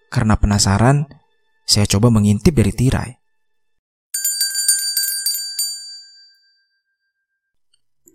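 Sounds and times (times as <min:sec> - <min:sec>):
speech: 0:00.1 - 0:03.2
small bells jingling on a house's front porch: 0:04.2 - 0:06.8.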